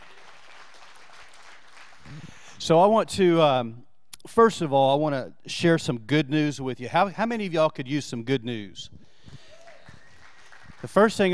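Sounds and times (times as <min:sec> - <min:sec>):
audience clapping: 0:00.0 - 0:02.6, 0:09.2 - 0:11.3
speech: 0:02.1 - 0:09.0, 0:10.8 - 0:11.3.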